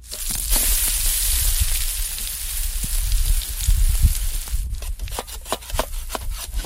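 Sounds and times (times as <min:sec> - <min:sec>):
steady hissing sizzling background: 0:00.0 - 0:04.8
wood being chopped outdoors for a fire: 0:04.8 - 0:06.6.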